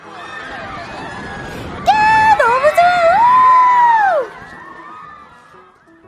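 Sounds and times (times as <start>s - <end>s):
crowd murmur at an amusement park: 0.0s - 6.0s
riders screaming and whooping on a swinging pirate ship ride: 0.1s - 5.8s
woman screaming with excitement on a pirate ship ride: 1.8s - 4.3s.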